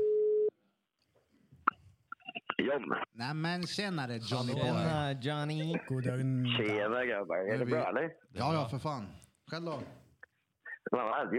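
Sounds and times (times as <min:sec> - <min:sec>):
electronic telephone ringing tone: 0:00.0 - 0:00.5
speech: 0:02.7 - 0:10.0, 0:10.9 - 0:11.3.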